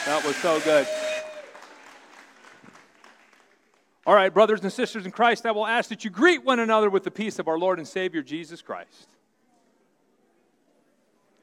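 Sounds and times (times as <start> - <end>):
church congregation applauding children after their performance: 0.0 - 4.4
speech: 0.1 - 1.0, 4.0 - 9.1.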